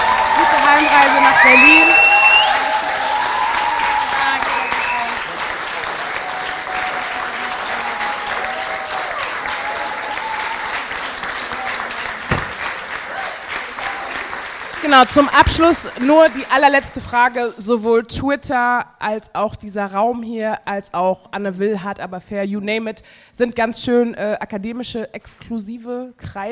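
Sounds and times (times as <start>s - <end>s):
live audience applauding: 0.0s - 17.3s
thump: 12.3s - 12.6s
speech: 14.9s - 26.5s.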